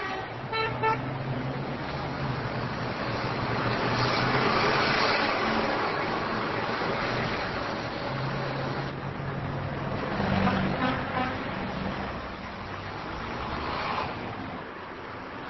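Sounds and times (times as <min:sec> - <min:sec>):
car horns honking in city street traffic: 0:00.0 - 0:01.1
city street traffic engines roaring around Plaza Independencia in the Ciudad Vieja: 0:00.0 - 0:15.4.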